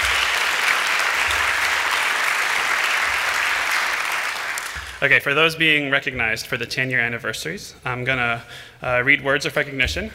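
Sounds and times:
crowd applauding: 0.0 - 5.1
speech: 5.0 - 10.1.

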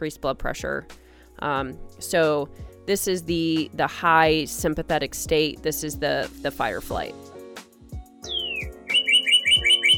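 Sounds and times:
speech: 0.0 - 7.3
bird chirping in a recording booth: 8.2 - 9.9.

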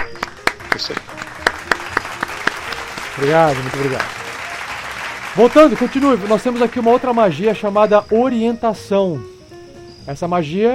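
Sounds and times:
small group applauding the game master: 0.0 - 7.8
speech: 0.8 - 1.2, 3.2 - 4.2, 5.4 - 9.3, 10.0 - 10.7.

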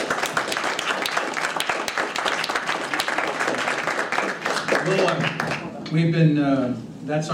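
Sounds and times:
audience applauding a speaker at an event: 0.0 - 5.8
speech: 4.9 - 7.3.

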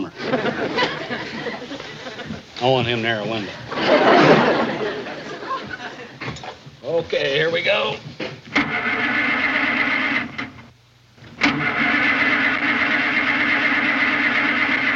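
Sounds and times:
laughter: 0.0 - 6.4
speech: 2.6 - 4.7, 7.0 - 8.1
flooded car engine cranking without catching: 8.4 - 10.6, 11.3 - 14.9.

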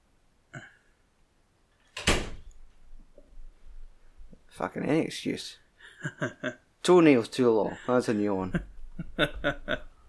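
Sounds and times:
living room door pushed shut with a firm thud: 2.0 - 2.5
speech: 4.6 - 9.9
laughter: 8.4 - 9.9.

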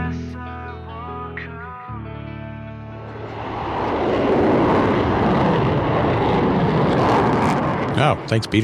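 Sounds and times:
aircraft jet engine whining and roaring as it powers up: 2.9 - 8.6
speech: 8.0 - 8.6.

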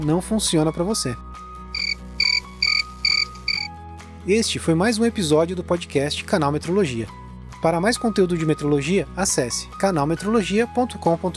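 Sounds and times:
speech: 0.0 - 1.4, 4.2 - 11.3
crickets chirping: 1.8 - 3.7.

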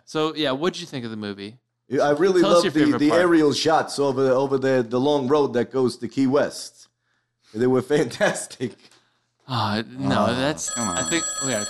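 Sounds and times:
speech: 0.1 - 6.9, 7.5 - 11.6
old-fashioned telephone ringing: 10.6 - 11.6.

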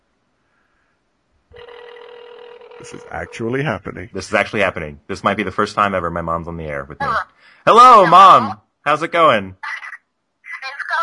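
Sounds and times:
phone ringing over a speakerphone: 1.5 - 3.6
speech: 2.8 - 9.7.

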